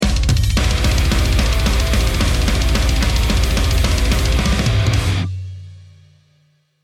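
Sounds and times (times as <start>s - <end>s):
round MVP anthem music: 0.0s - 6.8s.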